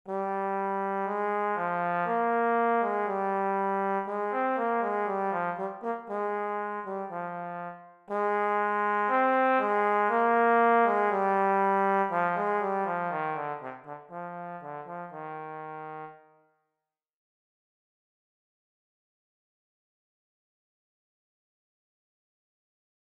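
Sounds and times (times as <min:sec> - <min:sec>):
trombone playing an etude: 0:00.1 - 0:16.3.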